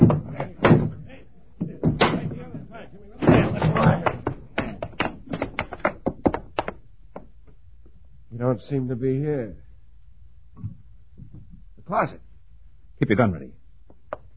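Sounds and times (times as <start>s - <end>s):
voices: 0.0s - 4.9s
door being forced in with heavy thuds and bangs: 0.0s - 6.8s
rapid string of shorter knocks and thumps: 0.0s - 7.6s, 10.6s - 11.7s
speech: 8.5s - 9.6s, 11.9s - 12.2s, 13.0s - 13.6s.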